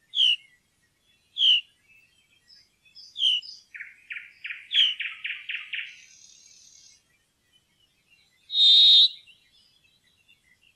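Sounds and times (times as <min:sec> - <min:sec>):
brambling giving repeated chirping notes: 0:00.0 - 0:10.7.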